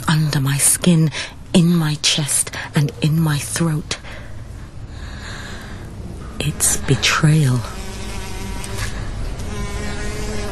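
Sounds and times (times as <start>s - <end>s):
speech: 0.2s - 4.2s, 6.4s - 7.8s
bee buzzing: 6.4s - 10.4s.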